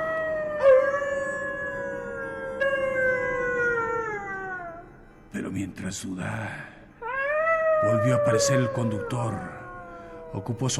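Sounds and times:
wolves howling: 0.0 - 5.0, 7.0 - 10.7
speech: 5.5 - 6.7, 7.8 - 9.6, 10.3 - 10.7.

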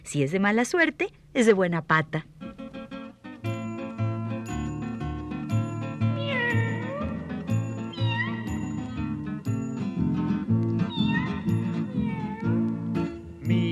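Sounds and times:
speech: 0.1 - 2.3
steady full musical backing: 2.4 - 13.7
kitten meowing: 6.1 - 7.3, 7.9 - 8.7, 10.9 - 12.6.

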